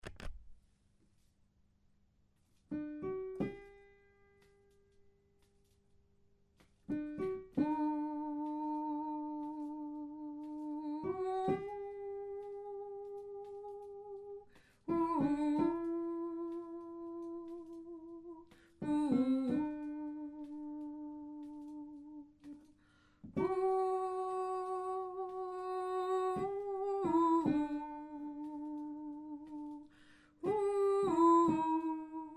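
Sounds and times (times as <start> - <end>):
alto voice: 6.9 - 22.7, 23.4 - 32.3.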